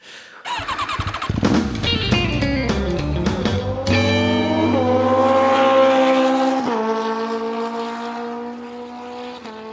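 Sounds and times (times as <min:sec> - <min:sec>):
motorcycle engine roaring as riders drive past: 0:00.5 - 0:09.7.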